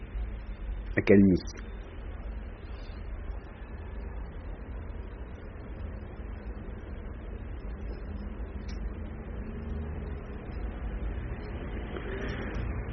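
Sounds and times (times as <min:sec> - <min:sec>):
dense city street traffic on a boulevard: 0:00.0 - 0:12.9
speech: 0:01.0 - 0:01.7.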